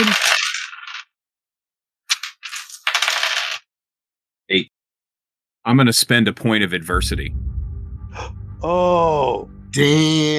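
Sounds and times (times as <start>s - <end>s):
ten dice rattling and rolling across a hard surface: 0.1s - 1.0s, 2.1s - 3.6s
speech: 4.5s - 4.7s, 5.6s - 7.6s, 8.2s - 10.3s.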